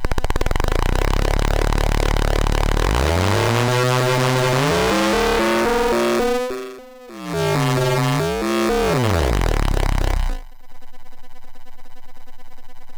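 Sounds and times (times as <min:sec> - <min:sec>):
synthesizer sawtooth wave through a filter: 0:00.1 - 0:10.5.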